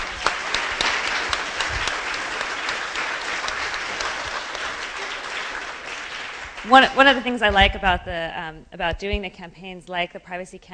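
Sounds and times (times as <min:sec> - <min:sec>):
audience applauding: 0:00.0 - 0:07.5
speech: 0:06.6 - 0:10.7.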